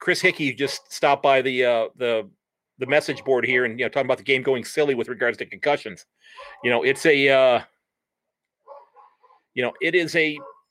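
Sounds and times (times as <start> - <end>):
speech: 0.0 - 7.7, 9.6 - 10.5
dogs barking outside while being walked: 0.2 - 1.0, 2.9 - 3.6, 6.3 - 7.4, 8.6 - 10.6.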